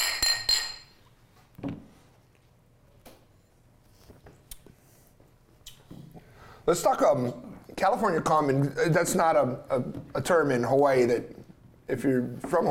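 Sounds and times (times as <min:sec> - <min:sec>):
beer glasses clinking in a toast: 0:00.0 - 0:01.0
speech: 0:01.6 - 0:01.8, 0:06.7 - 0:12.6.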